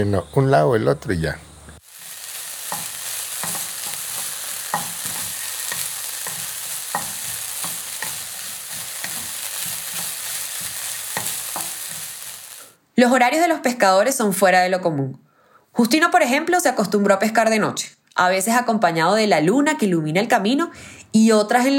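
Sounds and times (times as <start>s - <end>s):
speech: 0.0s - 1.5s, 13.0s - 15.2s, 15.8s - 21.7s
food frying submerged in plenty of oil in a pot: 1.8s - 12.8s
stirring strokes scraping: 1.9s - 12.6s.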